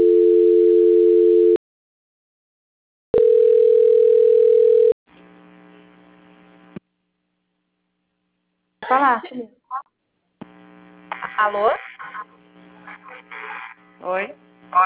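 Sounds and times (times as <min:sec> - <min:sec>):
telephone line tones during a call transfer: 0:00.0 - 0:01.6, 0:03.2 - 0:05.0
speech: 0:08.9 - 0:09.6, 0:11.4 - 0:11.9, 0:14.0 - 0:14.8.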